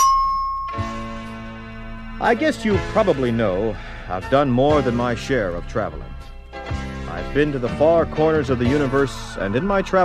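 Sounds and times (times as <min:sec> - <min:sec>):
two-tone ding-dong chime: 0:00.0 - 0:01.6
speech: 0:02.2 - 0:06.3, 0:07.2 - 0:10.0.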